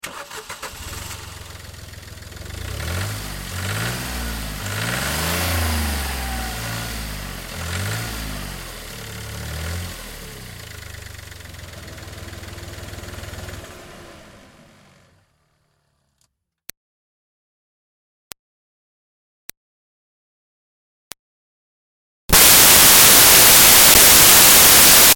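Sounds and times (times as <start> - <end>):
2005 Smart Fortwo car engine revving heard onboard: 0.0 - 15.6, 22.4 - 25.1.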